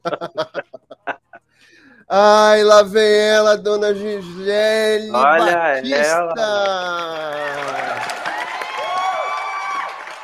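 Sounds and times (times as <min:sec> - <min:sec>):
laughter: 0:00.0 - 0:01.5, 0:05.2 - 0:08.2
speech: 0:02.1 - 0:07.1
scattered clapping: 0:06.4 - 0:10.2
crowd cheering and whooping: 0:06.5 - 0:10.2.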